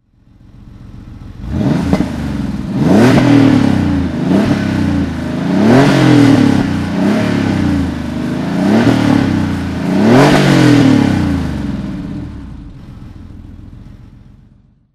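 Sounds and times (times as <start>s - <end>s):
Porsche 911 964 C4 coupe engine throttle: 0.0s - 14.9s.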